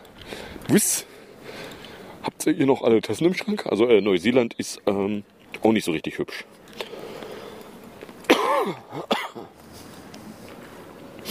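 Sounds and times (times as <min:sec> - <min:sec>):
speech: 0:00.7 - 0:01.1, 0:02.4 - 0:06.6, 0:08.6 - 0:09.4
harsh coughs: 0:08.3 - 0:09.5.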